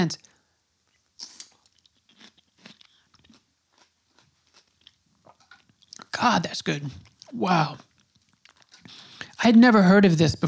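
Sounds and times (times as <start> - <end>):
speech: 0.0 - 0.3, 6.2 - 7.9, 9.4 - 10.4
chewing crunchy pickled watermelon: 0.9 - 6.1, 6.9 - 9.2.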